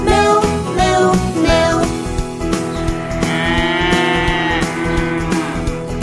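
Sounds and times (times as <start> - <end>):
musical backing with bright tones: 0.0 - 6.0
cow mooing: 2.6 - 6.0.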